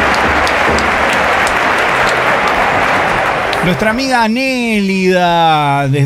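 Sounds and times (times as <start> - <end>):
applause from a group: 0.0 - 4.8
speech: 3.6 - 6.0.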